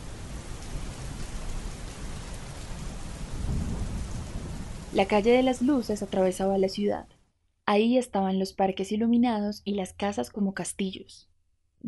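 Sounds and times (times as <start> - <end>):
low thunder rumble: 0.0 - 6.8
steady rain: 0.0 - 7.0
speech: 5.0 - 7.1, 7.7 - 11.8.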